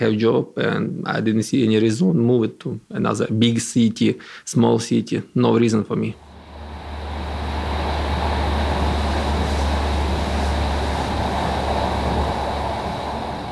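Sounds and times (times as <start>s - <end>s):
speech: 0.0s - 6.3s
train running on rails: 6.2s - 13.5s.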